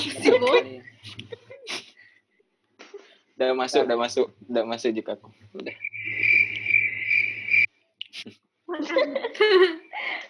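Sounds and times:
crickets chirping: 0:00.0 - 0:01.2, 0:05.6 - 0:07.7
speech: 0:00.0 - 0:01.3, 0:03.4 - 0:05.9, 0:08.2 - 0:10.2
person laughing: 0:00.0 - 0:01.9.

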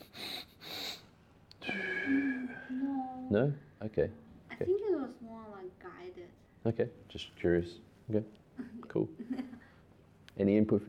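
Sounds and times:
person imitating forceful pranayama nasal breathing: 0:00.0 - 0:02.5
wheezy snorting exhale with a slight voiced whine: 0:00.0 - 0:02.7
speech: 0:03.3 - 0:09.7, 0:10.4 - 0:10.8.

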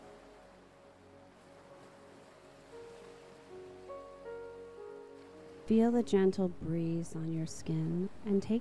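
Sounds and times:
ocean waves breaking against the shore: 0:00.0 - 0:06.3
gentle sustained musical tones: 0:00.0 - 0:08.6
speech: 0:05.7 - 0:08.6.

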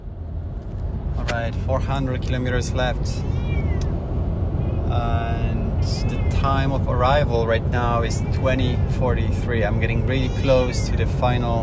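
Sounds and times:
steady loud low engine rumble: 0:00.0 - 0:11.6
speech: 0:01.3 - 0:03.4, 0:04.9 - 0:11.6
cat meowing: 0:03.1 - 0:04.0, 0:10.1 - 0:11.0.

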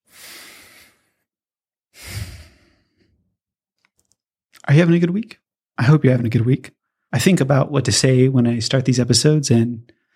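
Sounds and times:
deep breath: 0:00.0 - 0:01.3, 0:01.9 - 0:03.3
speech: 0:04.7 - 0:10.0.

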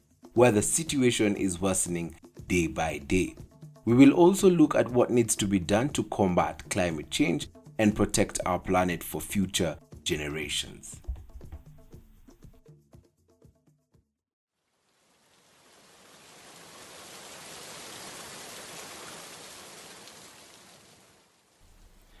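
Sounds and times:
speech: 0:00.4 - 0:11.0
rain falling in Kenya's arid and semi-arid lands: 0:14.7 - 0:22.1.

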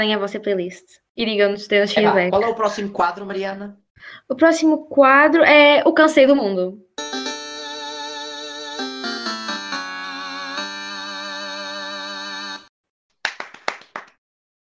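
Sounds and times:
speech: 0:00.0 - 0:07.1
sustained tonal musical passage: 0:07.0 - 0:12.7
sharp hand claps: 0:13.1 - 0:14.2.

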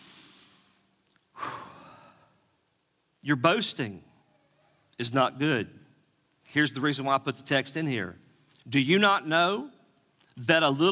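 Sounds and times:
deep breath during a sermon: 0:00.0 - 0:02.4
speech: 0:03.2 - 0:04.1, 0:05.0 - 0:05.8, 0:06.5 - 0:09.8, 0:10.4 - 0:10.9.

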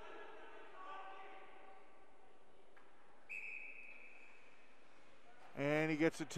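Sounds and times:
referee's whistle blast at hockey game: 0:03.3 - 0:04.2
speech: 0:05.6 - 0:06.3.

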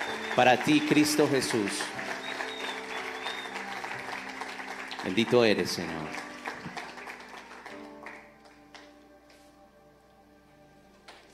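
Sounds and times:
large crowd applauding: 0:00.0 - 0:08.9
speech: 0:00.4 - 0:02.1, 0:05.0 - 0:06.2.

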